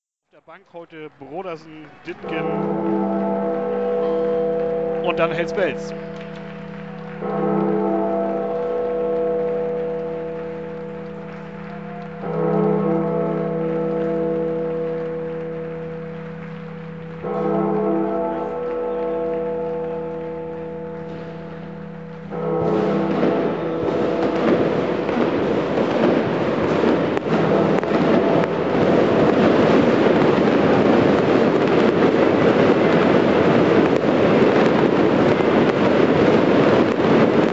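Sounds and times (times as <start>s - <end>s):
speech: 0.4s - 4.1s, 5.0s - 6.3s
fireworks and firecrackers exploding in a stadium: 0.5s - 37.5s
faint roar of a large crowd: 1.2s - 37.5s
ringing bell-like tones: 2.0s - 37.5s.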